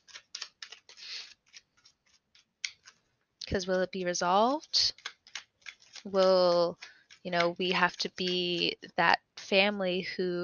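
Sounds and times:
tarot cards being pulled and shuffled: 0.0s - 3.2s, 3.9s - 8.9s
speech: 3.5s - 5.0s, 6.0s - 10.4s.

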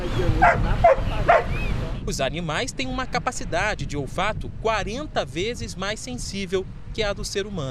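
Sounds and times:
speech: 0.2s - 1.4s, 2.1s - 7.7s
search-and-rescue sniffer dog barking: 0.4s - 1.6s.

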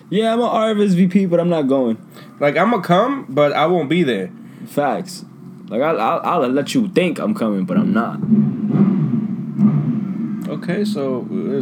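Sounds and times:
speech: 0.1s - 8.6s, 10.5s - 11.6s
motorcycle engine rumbling and revving: 7.7s - 11.6s.

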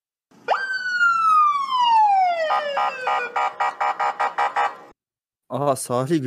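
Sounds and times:
police siren wailing and yelping: 0.4s - 4.9s
speech: 5.5s - 6.2s.

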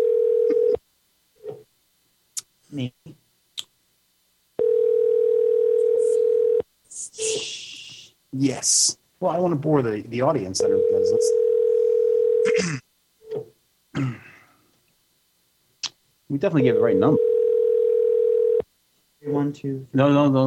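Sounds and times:
outgoing call ringback tone during a radio show: 0.0s - 0.8s, 4.6s - 6.6s, 10.6s - 12.6s, 16.6s - 18.6s
speech: 2.7s - 3.2s, 8.4s - 11.4s, 16.4s - 17.2s, 19.5s - 20.4s.

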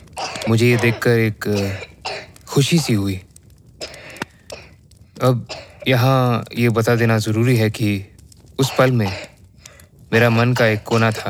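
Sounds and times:
woman coughing from smoke: 0.2s - 2.3s, 5.5s - 5.8s, 8.6s - 9.3s
speech: 0.5s - 1.9s, 2.6s - 3.3s, 5.2s - 9.3s, 10.1s - 11.2s.

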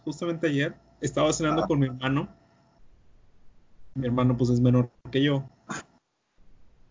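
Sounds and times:
faint noise: 0.0s - 6.8s
speech: 0.1s - 2.4s, 4.0s - 5.8s
person sneezing: 5.7s - 6.0s.

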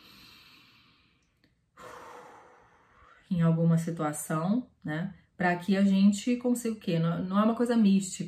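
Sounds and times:
slow deep diaphragmatic breath: 0.0s - 3.3s
speech: 3.3s - 8.2s.

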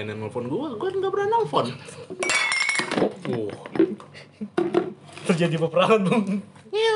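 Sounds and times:
speech: 0.0s - 6.9s
glass clinking as a cat handles it: 2.2s - 3.0s.

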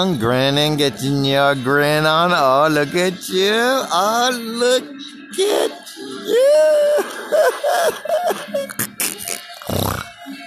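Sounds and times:
speech: 0.0s - 8.9s, 9.7s - 10.1s
strained throaty vocal noises: 1.7s - 10.4s
laughter: 5.3s - 9.7s
harsh rasping coughing fit: 7.8s - 10.0s.

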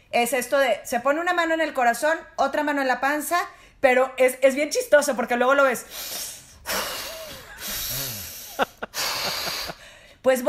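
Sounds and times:
speech: 0.2s - 6.9s, 10.2s - 10.4s
person imitating a child's deep breathing-exercise exhales: 5.9s - 10.0s
laughter: 7.2s - 9.8s.

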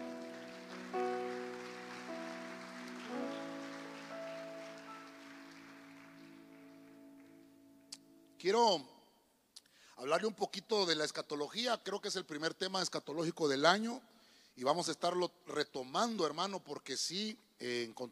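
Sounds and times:
church audience clapping during a service: 0.0s - 8.0s
sustained keyboard chords: 0.0s - 8.9s
speech: 8.4s - 8.9s, 10.0s - 18.1s.

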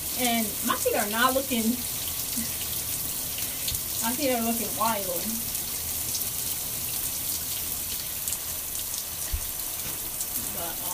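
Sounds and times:
running water rinsing exfoliating gloves: 0.0s - 10.9s
speech: 0.2s - 2.6s, 4.0s - 5.5s.

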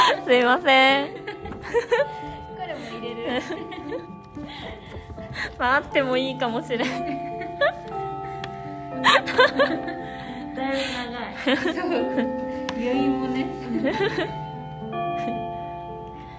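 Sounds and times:
people laughing: 0.0s - 4.9s, 6.8s - 8.0s, 9.0s - 10.5s, 11.4s - 12.4s, 13.6s - 14.5s
university bell chime ringing: 0.0s - 16.3s
speech: 0.3s - 2.4s, 3.0s - 8.0s, 9.0s - 14.4s.

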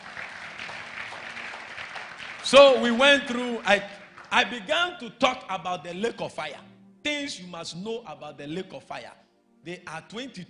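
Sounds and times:
crowd clapping: 0.0s - 4.9s
speech: 2.5s - 10.4s.

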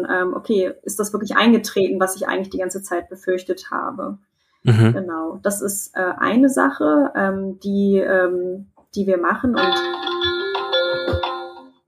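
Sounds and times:
speech: 0.0s - 10.4s
phone ringtone with bright electronic melody of layered tones: 9.6s - 11.8s.

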